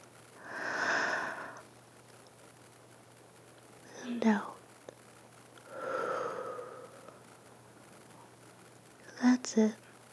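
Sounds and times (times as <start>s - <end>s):
deep breath in: 0.4s - 1.6s, 5.7s - 7.2s
speech: 4.2s - 4.5s, 9.5s - 9.8s.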